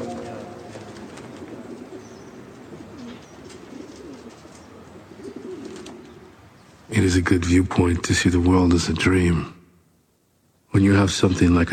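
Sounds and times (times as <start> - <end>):
pigeons cooing: 0.0 - 6.9
speech: 6.9 - 9.6, 11.0 - 11.7.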